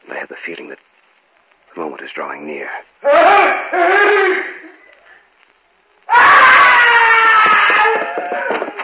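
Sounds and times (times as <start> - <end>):
speech: 0.1 - 1.0, 1.8 - 4.8
person screaming: 3.0 - 4.7, 6.1 - 8.7.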